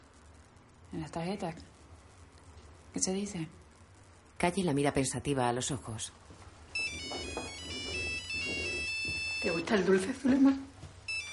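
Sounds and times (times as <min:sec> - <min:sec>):
speech: 0:00.9 - 0:01.8, 0:02.9 - 0:03.6, 0:04.4 - 0:06.2, 0:09.4 - 0:10.7
mobile phone ringtone: 0:06.7 - 0:09.9, 0:11.1 - 0:11.3.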